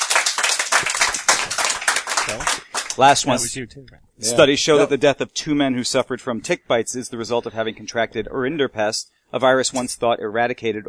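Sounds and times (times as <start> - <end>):
audience clapping: 0.0 - 3.4
speech: 2.3 - 10.8.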